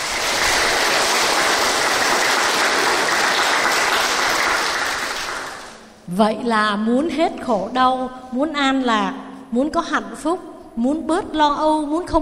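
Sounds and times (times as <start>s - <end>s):
audience applause: 0.0s - 5.9s
speech: 6.2s - 12.2s.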